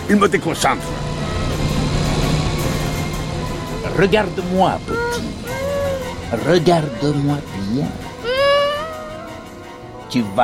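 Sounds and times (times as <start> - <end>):
car engine roaring at high revs at full throttle: 0.0 - 6.7
speech: 0.1 - 1.1, 4.0 - 5.4, 6.3 - 8.0, 10.1 - 10.4.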